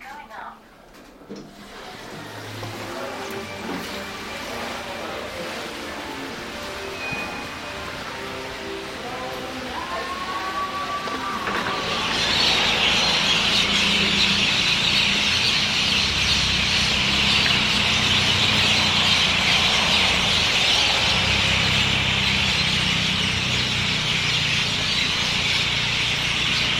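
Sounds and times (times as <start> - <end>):
low rumble of traffic: 1.0 - 26.7
flock of birds calling in trees at dusk: 2.9 - 26.7.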